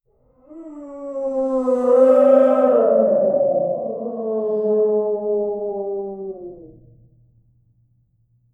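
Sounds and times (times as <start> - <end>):
eerie soundscape: 0.5 - 7.1.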